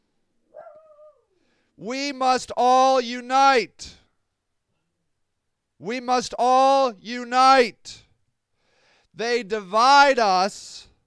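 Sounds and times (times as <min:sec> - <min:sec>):
dog giving a drawn-out yelping bark: 0:00.5 - 0:01.3
speech: 0:01.8 - 0:04.0, 0:05.8 - 0:08.0, 0:09.2 - 0:10.9.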